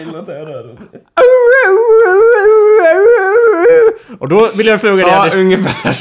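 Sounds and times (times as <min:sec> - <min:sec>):
speech: 0:00.0 - 0:01.8, 0:03.7 - 0:05.9
person imitating a dog howling: 0:01.2 - 0:04.0.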